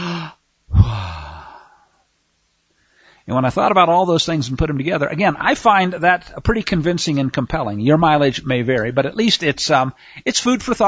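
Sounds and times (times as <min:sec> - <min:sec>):
person imitating a dying person's last breath: 0:00.0 - 0:02.0
speech: 0:03.3 - 0:10.8.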